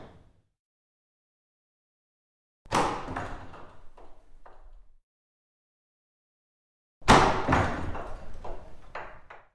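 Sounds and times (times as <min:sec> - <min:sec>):
wooden vestry door opening: 0:02.7 - 0:04.9, 0:07.4 - 0:09.5.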